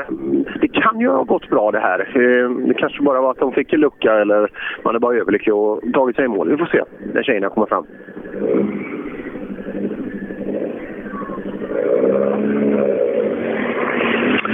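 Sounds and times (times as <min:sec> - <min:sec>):
speech: 0:00.0 - 0:08.8
Golf rally car engine revving hard: 0:07.8 - 0:14.5.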